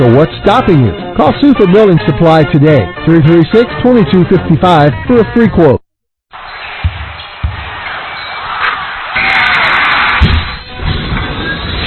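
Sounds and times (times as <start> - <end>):
speech: 0.0 - 6.5
arena crowd cheering: 6.3 - 10.5
basketball bouncing on a court: 6.8 - 7.8.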